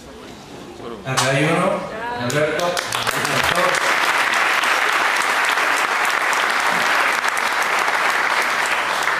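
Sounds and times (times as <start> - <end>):
speech: 1.0 - 3.4
crowd applauding: 2.2 - 9.1.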